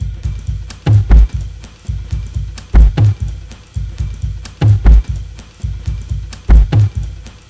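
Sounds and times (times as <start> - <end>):
electro swing beat at 128 bpm: 0.0 - 7.4.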